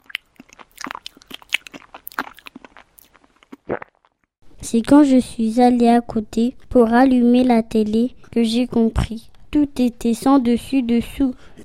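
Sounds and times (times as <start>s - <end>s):
person eating crunchy food: 0.0s - 4.3s
speech: 4.7s - 11.5s.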